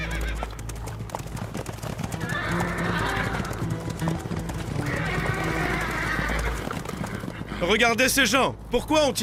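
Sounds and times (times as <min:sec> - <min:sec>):
ridden horses whinnying in long shrill wavering calls: 0:00.0 - 0:00.8, 0:02.0 - 0:08.0
rapid clip-clop of horse hooves through arid lands: 0:00.0 - 0:09.2
speech: 0:07.6 - 0:09.2.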